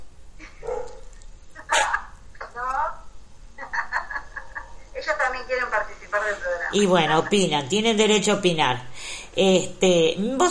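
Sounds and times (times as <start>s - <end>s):
small dogs barking in short high yaps: 0.6s - 1.1s
laughter: 1.6s - 2.1s, 3.6s - 5.0s
speech: 5.8s - 10.5s.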